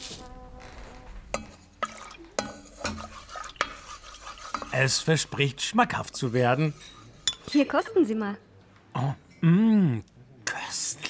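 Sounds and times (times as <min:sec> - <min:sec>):
utensils stirring and clinking in a pot of instant packet soup: 0:01.3 - 0:07.7
soft steady bubbling of instant packet soup: 0:01.8 - 0:03.7
speech: 0:04.8 - 0:10.1.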